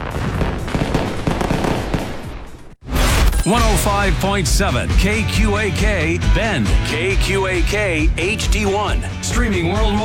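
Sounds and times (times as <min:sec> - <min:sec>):
fireworks crackling and popping: 0:00.0 - 0:02.8
speech: 0:03.4 - 0:10.0.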